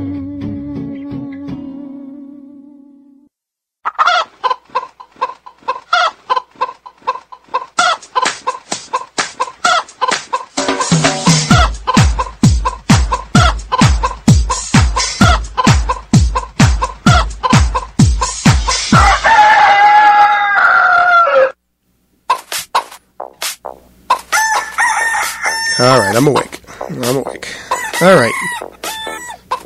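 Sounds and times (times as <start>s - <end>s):
chickens clucking: 3.8s - 19.3s, 22.2s - 29.6s
rooster crowing: 18.9s - 21.6s, 24.3s - 26.3s, 27.7s - 29.6s.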